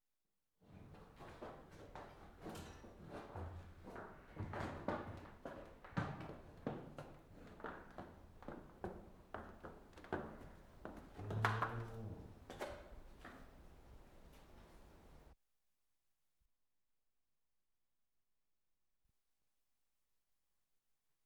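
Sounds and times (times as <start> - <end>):
cow walking into a milking parlour: 0.8 - 15.3.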